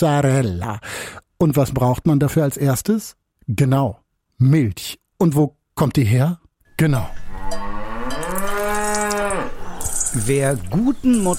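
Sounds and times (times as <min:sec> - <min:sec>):
speech: 0:00.0 - 0:07.2, 0:10.1 - 0:11.3
dairy cow lowing on a mountain pasture in Abruzzo: 0:07.2 - 0:10.3.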